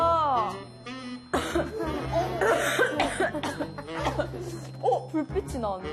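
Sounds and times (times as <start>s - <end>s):
person coughing forcefully: 1.3s - 4.7s
speech: 5.2s - 5.9s.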